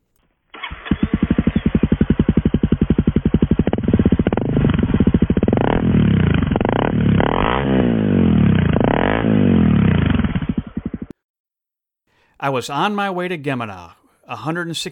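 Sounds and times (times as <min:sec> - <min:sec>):
Honda motorcycle engine with replacement axle bushing starting, idling and revving: 0:00.5 - 0:11.2
speech: 0:12.4 - 0:14.9.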